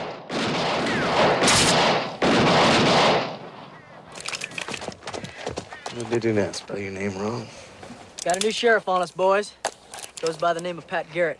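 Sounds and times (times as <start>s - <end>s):
rapid volleys of gunshots fired from guns: 0.0s - 3.6s
speech: 6.0s - 7.6s, 8.2s - 11.3s.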